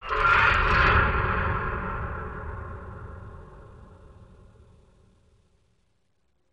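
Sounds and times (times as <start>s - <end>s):
creepy horror atmosphere sound effect ending lower: 0.0s - 5.1s.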